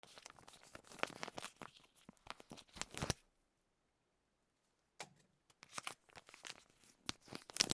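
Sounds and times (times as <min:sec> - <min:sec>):
retort pouch tearing open: 0:00.1 - 0:03.2, 0:05.6 - 0:07.7.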